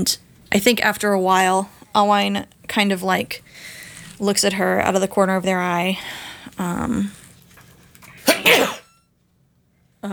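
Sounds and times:
speech: 0:00.0 - 0:07.2, 0:08.4 - 0:08.8
person sneezing: 0:08.2 - 0:08.9.

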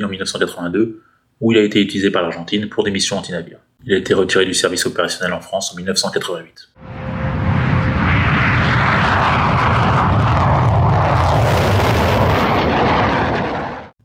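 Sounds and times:
speech: 0:00.0 - 0:07.0
Mirage III jet fighter flying overhead: 0:06.8 - 0:14.0.

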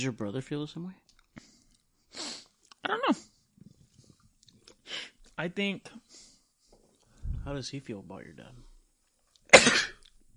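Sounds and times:
speech: 0:00.0 - 0:01.2, 0:02.9 - 0:03.3, 0:05.4 - 0:06.0, 0:07.4 - 0:08.6
single sharp sneeze: 0:09.5 - 0:10.0.

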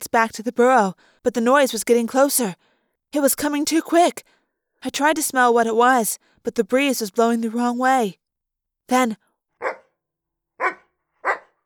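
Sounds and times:
speech: 0:00.1 - 0:08.2, 0:08.9 - 0:09.8, 0:10.6 - 0:10.8
dog barking: 0:09.6 - 0:10.0, 0:10.6 - 0:11.6.

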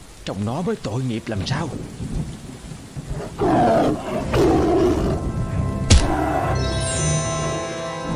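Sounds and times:
steady rain: 0:00.0 - 0:08.1
speech: 0:00.2 - 0:02.4, 0:03.2 - 0:04.8
rumbling thunder: 0:01.3 - 0:06.6
fierce tiger roaring: 0:03.0 - 0:06.6.

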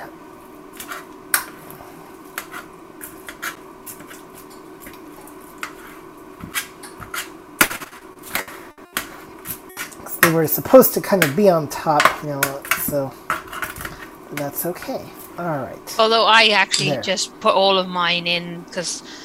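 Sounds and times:
spoon mashing onions in a pan: 0:00.6 - 0:15.4
speech: 0:10.3 - 0:13.2, 0:14.3 - 0:19.2.

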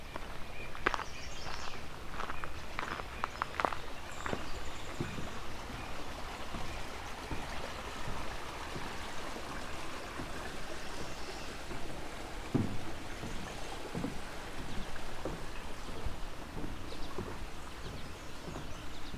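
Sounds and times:
narrow creek flowing: 0:00.0 - 0:19.1
soft knock: 0:04.3 - 0:19.1.

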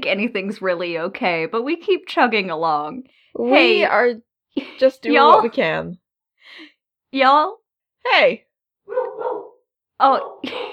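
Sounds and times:
speech: 0:00.0 - 0:09.3, 0:10.0 - 0:10.7
voice-like sound: 0:03.4 - 0:04.0
dog barking: 0:08.9 - 0:10.4.

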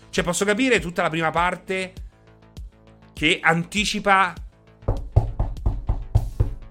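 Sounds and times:
speech: 0:00.2 - 0:02.0, 0:03.2 - 0:04.4
firm knocks on a door in a video game: 0:04.9 - 0:06.6.

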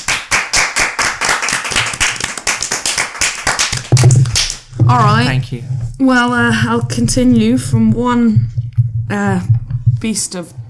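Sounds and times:
small group hand clapping: 0:00.0 - 0:04.8
speech: 0:04.9 - 0:10.6.

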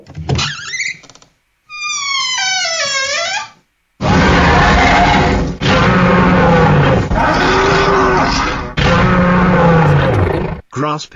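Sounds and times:
brief creak in a minotaur sound effect: 0:00.3 - 0:03.6
monstrous minotaur roar sound effect with bull-like bellow: 0:04.0 - 0:10.6
speech: 0:10.8 - 0:11.1.

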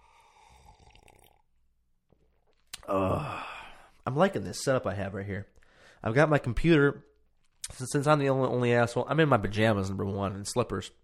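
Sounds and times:
loud satisfied exhale: 0:00.0 - 0:01.4, 0:02.8 - 0:04.0
person sipping a drink: 0:00.0 - 0:04.0
speech: 0:02.9 - 0:03.4, 0:04.1 - 0:07.1, 0:07.7 - 0:11.0.

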